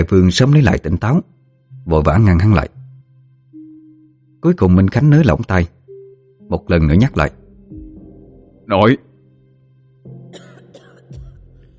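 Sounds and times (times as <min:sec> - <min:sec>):
speech: 0:00.0 - 0:02.8, 0:04.4 - 0:05.8, 0:06.5 - 0:07.4, 0:08.7 - 0:09.1
young girl coughing after being choked by the throat: 0:10.3 - 0:11.5.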